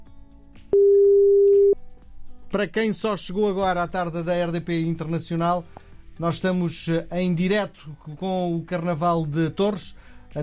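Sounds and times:
telephone busy tone on an unanswered call: 0.8 - 1.8
speech: 2.5 - 10.4.

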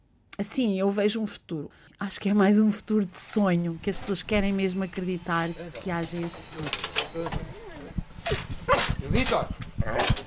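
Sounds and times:
speech: 0.4 - 7.6, 9.1 - 10.2
four-month-old puppy barking: 8.3 - 9.0.

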